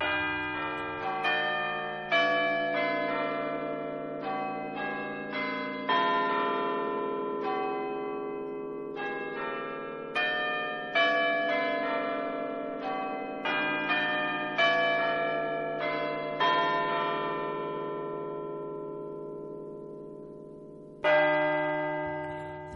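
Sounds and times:
church bells chiming a quarter-hour melody: 0.0s - 22.7s
single louder bell strike: 22.1s - 22.7s.

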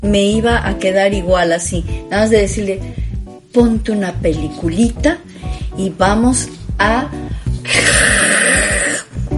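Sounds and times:
speech: 0.0s - 8.2s
person snoring: 7.6s - 9.2s
throaty voiced grunting snorts: 7.7s - 9.1s.

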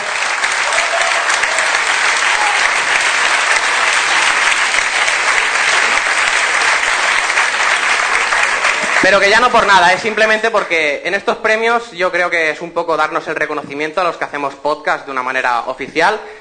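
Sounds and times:
loud applause from a large audience: 0.0s - 10.0s
speech: 9.0s - 16.3s.

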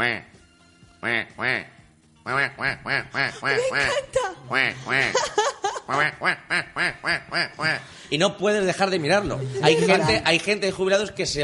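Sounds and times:
speech: 0.0s - 0.3s, 1.0s - 11.4s
person imitating a duck quacking: 0.0s - 0.4s, 1.0s - 5.2s, 5.9s - 7.8s
laughter: 3.3s - 6.2s, 8.9s - 10.4s.

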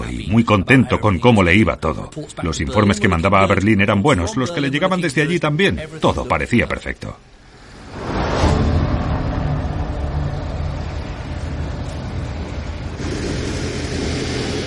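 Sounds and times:
speech: 0.3s - 7.4s
car engine rumbling as the car slows for a turn: 7.2s - 14.6s.

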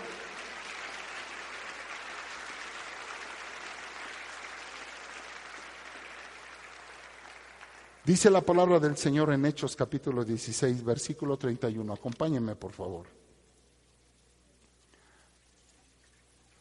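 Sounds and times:
audience applauding in a large room: 0.0s - 8.7s
speech: 8.1s - 13.2s.

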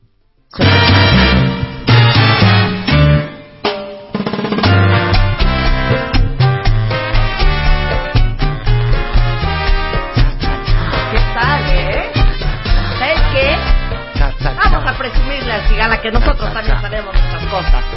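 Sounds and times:
recorded song with bass line, beat and melodic instruments: 0.5s - 17.9s.

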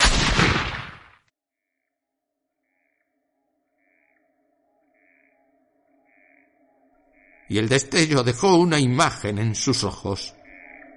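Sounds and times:
rifle shot with rumbling echo: 0.0s - 1.1s
speech: 7.5s - 10.4s.

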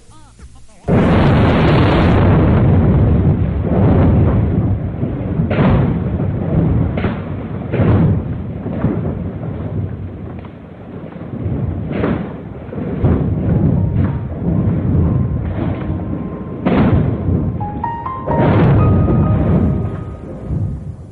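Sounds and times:
sharp cracks and jolts of earthquake: 0.9s - 17.4s
deep continuous rumbling roar of earthquake in north-western Japan: 0.9s - 21.1s.

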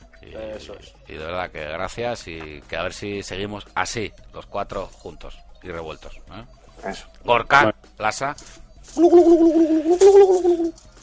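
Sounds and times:
speech: 0.4s - 10.9s
person vocally imitating a turkey gobble: 9.0s - 10.7s.

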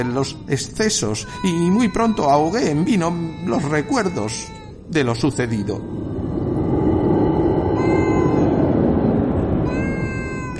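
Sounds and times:
speech: 0.0s - 6.1s
steady low rumbling background: 0.0s - 10.5s
cat meowing: 7.8s - 8.6s, 9.6s - 10.5s.

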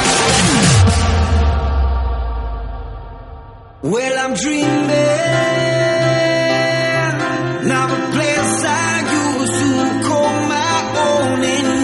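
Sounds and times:
deep downward sweep: 0.0s - 4.2s
newly released song playing: 0.0s - 11.8s
speech: 3.8s - 5.7s.

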